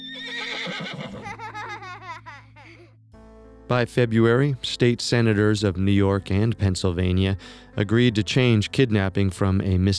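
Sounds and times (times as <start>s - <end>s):
horse whinnying with a quavering neigh: 0.0s - 1.3s
laughter: 1.1s - 2.9s
speech: 3.7s - 9.9s.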